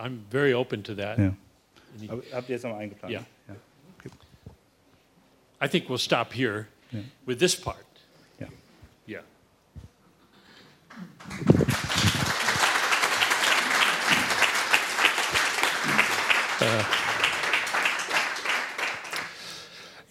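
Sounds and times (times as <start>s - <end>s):
speech: 0.0s - 4.2s, 5.6s - 9.3s, 16.6s - 17.0s
audience applause after a talk at an event: 10.9s - 19.6s.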